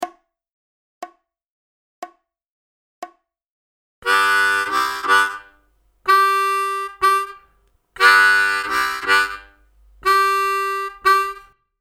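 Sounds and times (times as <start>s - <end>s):
solo rhythm harmonica: 4.0s - 11.5s.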